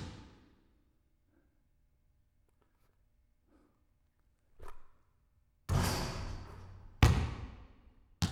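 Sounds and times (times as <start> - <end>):
basketball free throw: 5.7 - 8.2.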